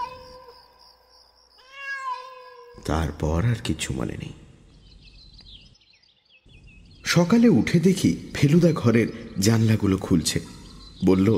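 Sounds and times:
cat meowing: 0:00.0 - 0:00.7, 0:01.6 - 0:02.8
speech: 0:02.9 - 0:04.4, 0:07.1 - 0:11.3.

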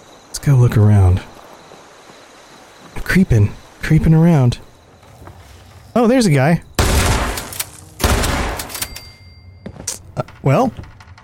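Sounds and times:
speech: 0:00.4 - 0:01.3, 0:03.1 - 0:04.6, 0:06.0 - 0:06.7, 0:10.2 - 0:10.9
gunshots in a video game: 0:06.8 - 0:08.9
thin high ringing tone: 0:08.8 - 0:09.9.

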